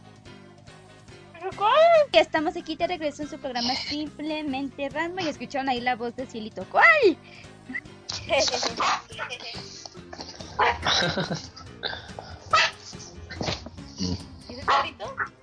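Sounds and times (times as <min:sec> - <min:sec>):
speech: 0:01.4 - 0:09.8, 0:10.9 - 0:12.0
pet dog barking and whimpering: 0:08.6 - 0:09.4, 0:10.5 - 0:10.9, 0:12.5 - 0:12.9, 0:14.6 - 0:15.4
laughter: 0:10.7 - 0:11.8.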